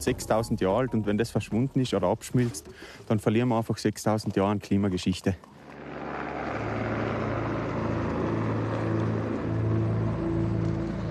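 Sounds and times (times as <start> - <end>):
speech: 0.0 - 5.5
helicopter flying equipment and a research team to the Weißseespitze summit: 5.5 - 11.0.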